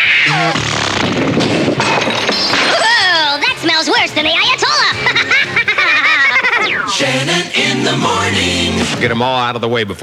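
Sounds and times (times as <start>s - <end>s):
comedy methane gas bomb explosion effect: 0.0s - 9.1s
speech: 0.2s - 2.6s, 3.8s - 5.3s, 7.0s - 10.0s
laughter: 2.2s - 10.0s
comedy rising whistle and wobbling tone: 5.7s - 8.5s.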